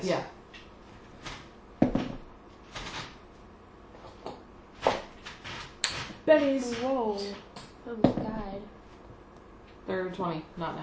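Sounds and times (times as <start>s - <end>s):
speech: 0.0s - 0.4s, 6.3s - 8.7s, 9.9s - 10.8s
heavy castle doors creaking: 4.8s - 8.4s.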